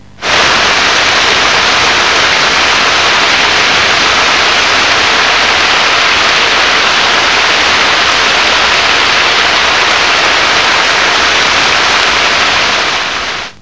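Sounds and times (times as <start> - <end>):
rain: 0.2 - 13.6.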